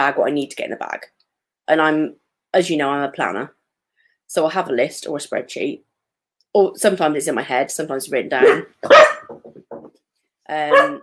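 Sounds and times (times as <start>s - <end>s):
speech: 0.0s - 3.6s, 4.3s - 5.9s, 6.5s - 9.2s, 10.5s - 11.0s
dog barking indoors: 8.4s - 9.4s, 10.7s - 11.0s.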